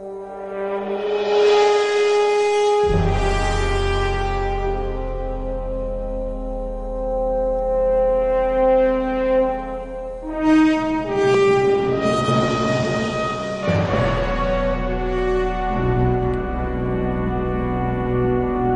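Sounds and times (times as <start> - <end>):
deep foghorn blowing: 0.0 - 18.7.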